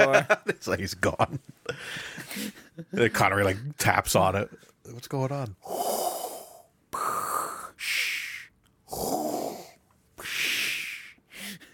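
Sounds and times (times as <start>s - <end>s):
speech: 0.0s - 6.1s
voice imitating heavy mechanical respirator breathing over a video call: 5.6s - 11.7s.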